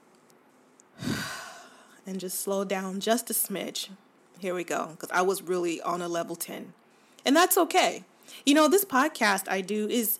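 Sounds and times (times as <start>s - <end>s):
deliberate breath: 1.0s - 2.0s
speech: 2.1s - 10.1s.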